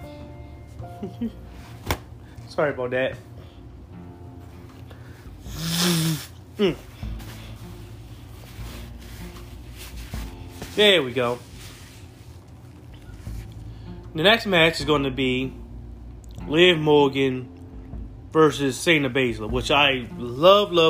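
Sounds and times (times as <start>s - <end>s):
speech: 1.0s - 3.3s, 5.6s - 6.9s, 10.8s - 11.5s, 14.2s - 15.6s, 16.5s - 17.6s, 18.3s - 20.8s
person blowing their nose: 5.4s - 7.8s.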